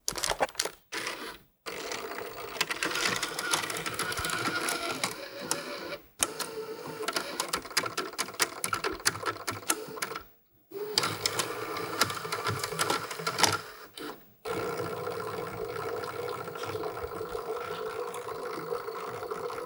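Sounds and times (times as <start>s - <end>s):
broken VHS camcorder playback: 0.0s - 10.2s, 10.8s - 19.5s.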